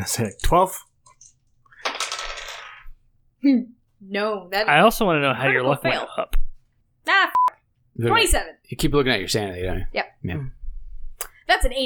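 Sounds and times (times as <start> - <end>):
speech: 0.0 - 0.9, 3.4 - 6.4, 7.0 - 7.4, 8.0 - 10.6, 11.5 - 11.8
dice rattling and tumbling during a tabletop roleplaying game luck roll: 1.0 - 2.9.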